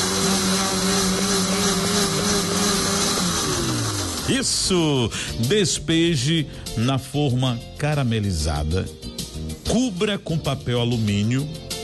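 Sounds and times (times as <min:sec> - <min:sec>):
blender blending grated coconut into a mixture: 0:00.0 - 0:05.0
speech: 0:04.3 - 0:09.1, 0:09.7 - 0:11.6.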